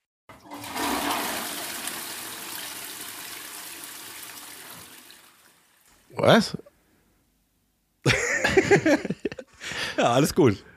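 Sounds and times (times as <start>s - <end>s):
toilet flushing: 0.3s - 5.8s
speech: 6.2s - 6.7s, 8.0s - 9.2s, 10.0s - 10.7s
laughter: 8.1s - 10.1s.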